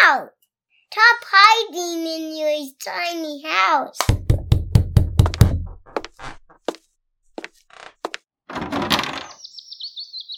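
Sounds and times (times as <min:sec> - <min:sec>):
speech: 0:01.0 - 0:04.3
hollow knocks on a roof: 0:04.1 - 0:05.7
high wavering chirp: 0:09.3 - 0:10.3.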